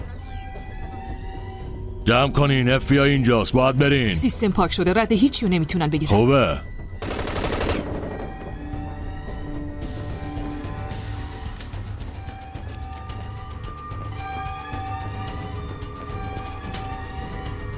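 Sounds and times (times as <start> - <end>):
speech: 2.1 - 6.7
rapid gunfire: 7.0 - 8.4.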